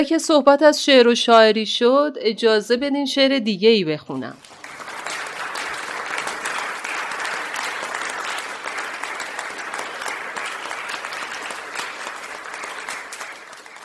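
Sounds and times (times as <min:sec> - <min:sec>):
speech: 0:00.0 - 0:04.5
audience applause at a meeting for a poetry recitation: 0:04.4 - 0:13.8.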